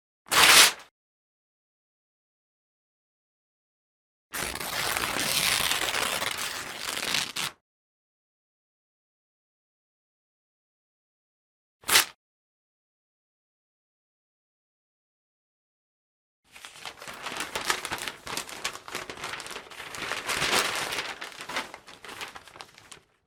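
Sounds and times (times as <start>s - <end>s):
paper ripping: 0.3s - 0.8s, 4.4s - 7.6s, 16.5s - 23.2s.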